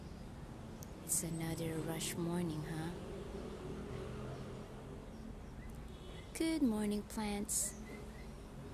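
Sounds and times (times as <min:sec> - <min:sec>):
road traffic with cars rumbling past: 0:00.0 - 0:08.7
speech: 0:01.1 - 0:03.1, 0:06.4 - 0:07.9.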